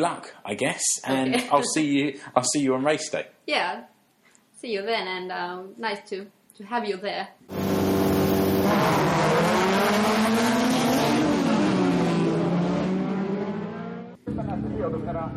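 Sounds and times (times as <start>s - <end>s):
speech: 0.0s - 3.9s, 4.6s - 9.3s, 14.8s - 15.3s
race car engines roaring at a racetrack on race day: 7.5s - 15.1s.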